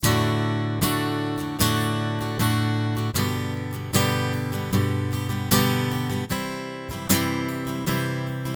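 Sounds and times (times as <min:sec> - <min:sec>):
acoustic guitar strumming: 0:00.0 - 0:08.5.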